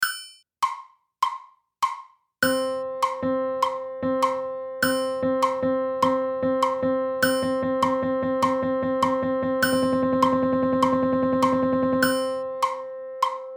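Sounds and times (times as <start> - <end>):
group of triplet notes: 2.4 - 13.5.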